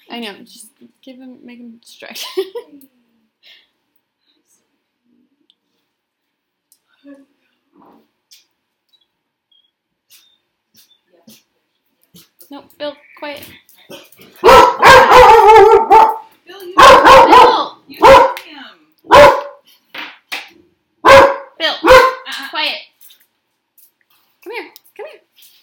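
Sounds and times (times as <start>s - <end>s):
speech: 0.1s - 3.6s, 7.0s - 8.1s, 12.5s - 14.6s
dog barking at someone at the door: 14.4s - 18.4s, 19.1s - 19.6s, 21.0s - 22.3s.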